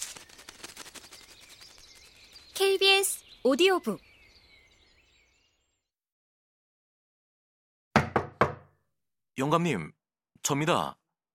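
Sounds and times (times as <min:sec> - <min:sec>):
speech: 0:02.6 - 0:04.1, 0:09.4 - 0:11.0
knocking on a door: 0:08.0 - 0:08.8.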